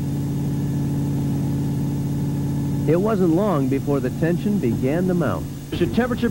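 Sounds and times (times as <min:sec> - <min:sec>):
car engine idling with its oil drained: 0:00.0 - 0:06.2
speech: 0:02.9 - 0:06.2.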